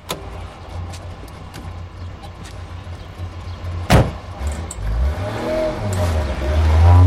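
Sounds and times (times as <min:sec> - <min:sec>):
car engine starting and revving as the car pulls away: 0:03.6 - 0:07.0
car door slamming shut: 0:03.9 - 0:04.3.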